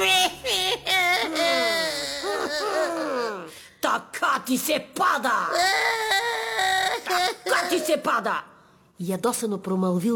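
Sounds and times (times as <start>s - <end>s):
woman sobbing and wailing bitterly: 0.0s - 3.6s, 5.2s - 8.3s
speech: 4.0s - 6.0s, 7.1s - 10.1s.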